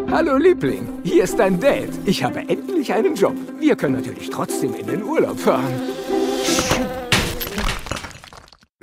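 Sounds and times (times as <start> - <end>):
speech: 0.2 - 6.1
bee buzzing: 4.5 - 7.6
crashing and breaking: 6.7 - 8.7.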